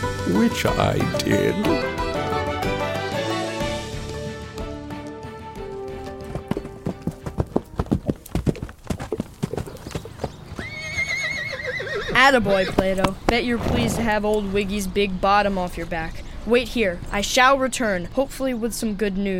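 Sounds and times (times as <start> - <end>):
music: 0.0 - 8.2
speech: 0.3 - 2.0, 12.2 - 19.3
horse hooves clip-clopping: 4.6 - 14.4
horse whinnying: 10.6 - 14.2.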